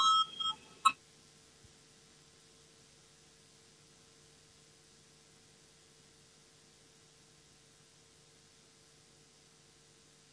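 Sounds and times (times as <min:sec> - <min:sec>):
electronic signal bell calling a vote on an amendment: 0:00.0 - 0:00.9.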